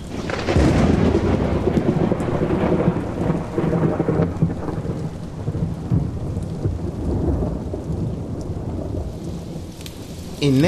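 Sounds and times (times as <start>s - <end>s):
deep rolling thunder: 0.0s - 10.6s
heavy pouring rain in a thunderstorm: 0.0s - 10.6s
speech: 10.4s - 10.6s.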